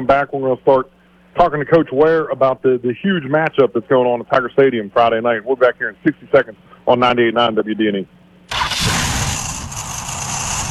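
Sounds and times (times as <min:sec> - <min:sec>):
speech: 0:00.0 - 0:08.2
old car engine struggling to start: 0:08.5 - 0:10.6.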